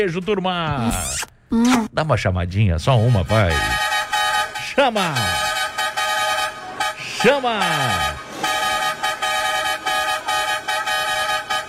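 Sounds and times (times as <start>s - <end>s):
speech: 0.0s - 3.8s, 4.8s - 5.4s, 7.2s - 8.1s
vehicle horn honking: 2.9s - 11.6s.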